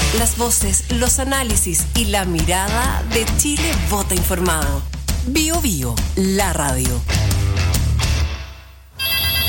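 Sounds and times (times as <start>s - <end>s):
speech: 0.1s - 7.4s
apartment intercom buzzer buzzing: 9.0s - 9.4s.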